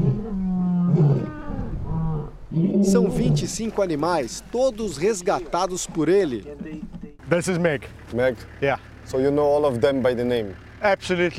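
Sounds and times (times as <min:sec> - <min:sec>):
lion roaring with deep drawn-out moaning calls: 0:00.0 - 0:03.9
speech: 0:02.6 - 0:11.3.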